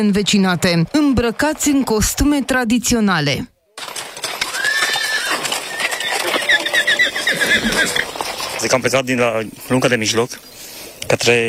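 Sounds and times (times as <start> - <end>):
speech: 0.0 - 3.9, 8.6 - 10.5, 11.1 - 11.4
horse hooves clip-clopping of mounted pilgrims in traditional costume: 0.0 - 10.4
horses whinnying: 3.8 - 10.0.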